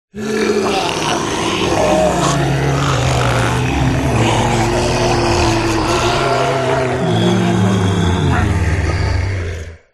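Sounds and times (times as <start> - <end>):
horror zombies groaning: 0.1 - 9.9.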